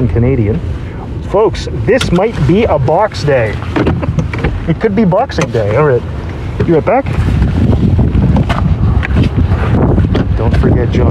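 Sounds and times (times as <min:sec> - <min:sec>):
speech: 0:00.0 - 0:04.1, 0:04.7 - 0:07.4, 0:10.5 - 0:11.0
wind gusts buffeting the microphone: 0:00.0 - 0:11.0.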